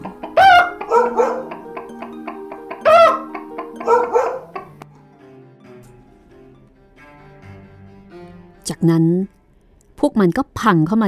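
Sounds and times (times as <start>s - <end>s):
donkey braying: 0.0s - 4.8s
rooster crowing: 0.0s - 4.8s
dog barking: 0.4s - 1.6s, 3.8s - 4.7s
speech: 8.7s - 9.4s, 10.2s - 11.0s.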